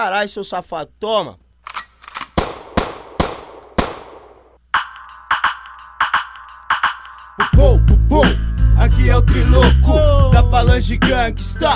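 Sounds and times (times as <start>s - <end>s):
speech: 0.0s - 1.4s, 9.2s - 11.7s
gunshots: 1.7s - 4.6s
loud music: 4.7s - 11.7s.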